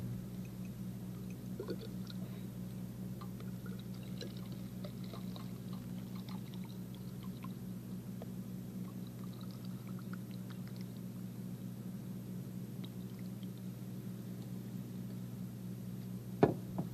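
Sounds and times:
low constant hum: 0.0s - 16.9s
thin stream of colored water trickling into a narrow test tube: 0.4s - 2.3s, 3.2s - 7.6s, 8.8s - 11.1s, 12.8s - 13.8s.

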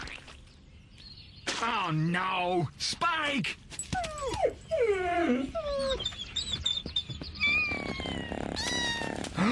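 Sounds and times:
speech: 1.6s - 3.7s, 4.2s - 6.2s
softer squeaky whines: 5.6s - 9.3s
kittens meowing: 7.4s - 9.4s.

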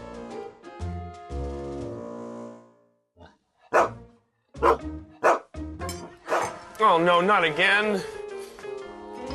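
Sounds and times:
dog barking sharply: 3.7s - 4.0s, 4.6s - 5.5s, 6.3s - 6.6s
speech: 4.6s - 5.2s, 6.8s - 8.2s.

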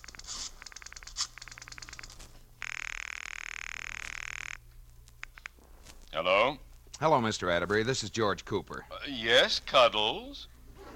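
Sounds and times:
buzzing telephone ring tone: 0.0s - 4.6s
low hum: 0.0s - 10.9s
speech: 6.2s - 10.5s.

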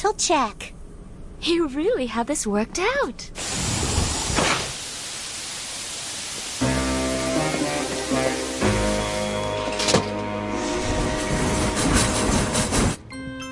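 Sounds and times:
speech: 0.0s - 0.8s, 1.4s - 3.6s
moving train rumbling on rails: 6.4s - 13.2s.

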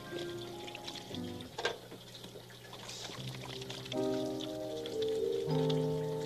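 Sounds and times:
tap water running: 0.0s - 6.2s.

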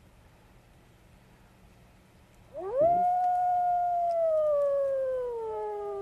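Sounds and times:
faint hiss: 0.0s - 5.9s
live wolf howling: 2.5s - 5.9s.

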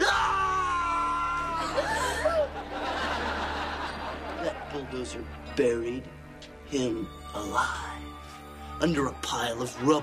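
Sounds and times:
man screaming in terror: 0.0s - 2.0s
laughter: 1.4s - 5.8s, 9.5s - 10.0s
speech: 4.7s - 8.1s, 8.8s - 10.0s.

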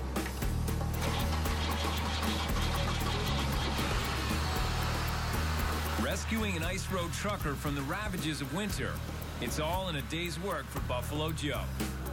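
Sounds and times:
car engine boosted by an auxiliary battery turning over and idling: 0.1s - 7.3s
speech: 6.1s - 12.0s.

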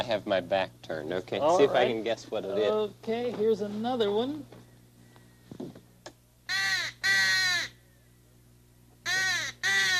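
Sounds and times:
speech: 0.0s - 4.6s
crow cawing: 6.5s - 7.8s, 9.0s - 9.9s.

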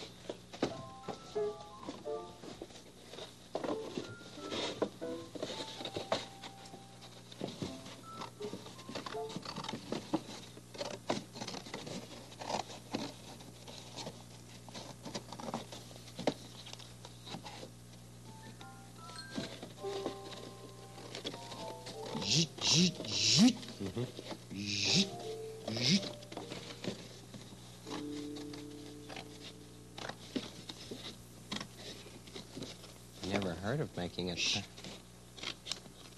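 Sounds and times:
faint hum: 0.0s - 36.1s
scissors cutting cardboard box: 9.2s - 15.6s, 25.7s - 26.1s.

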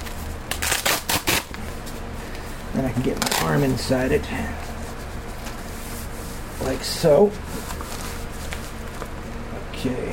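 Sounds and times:
velcro ripping as a blood pressure cuff is unwrapped: 0.0s - 1.6s, 3.1s - 3.7s
speech: 2.8s - 4.7s, 6.6s - 7.8s, 9.8s - 10.1s.

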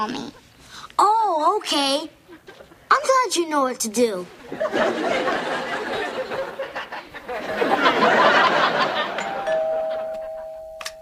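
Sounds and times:
speech: 0.0s - 2.2s, 2.9s - 6.0s
audience laughter: 4.4s - 9.4s
doorbell chime: 9.1s - 11.0s.

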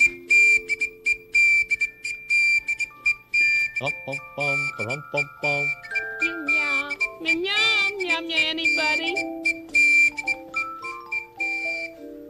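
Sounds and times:
shrill whistle blasts: 0.0s - 12.0s
speech: 3.8s - 5.9s, 7.2s - 9.4s.

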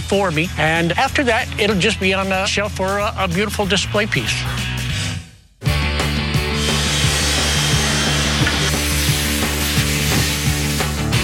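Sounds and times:
speech: 0.1s - 4.8s
power drill boring into the metal lock of a bowling vending machine: 6.5s - 11.1s.

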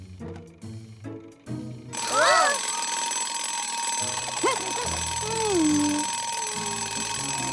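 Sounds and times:
voices: 2.0s - 2.7s, 4.4s - 7.2s
electronic timer alarm ringing: 2.0s - 7.5s.

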